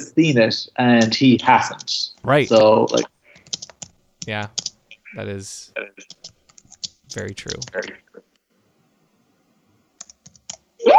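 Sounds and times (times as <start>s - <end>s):
speech: 0.1s - 3.1s, 4.2s - 6.4s, 7.1s - 8.0s
computer keyboard typing: 1.0s - 4.8s, 6.0s - 7.9s, 10.0s - 10.7s.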